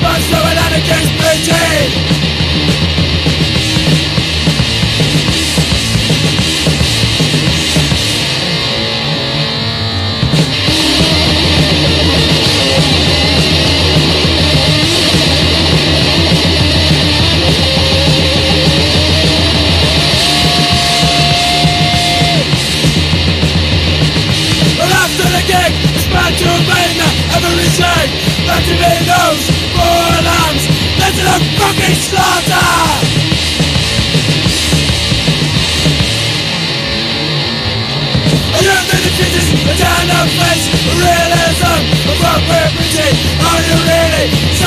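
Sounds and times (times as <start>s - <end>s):
harsh shouting and screaming: 0.0s - 2.1s, 10.5s - 23.2s, 24.5s - 33.6s, 38.4s - 44.6s
loud distorted wall of noisy music: 0.0s - 44.6s.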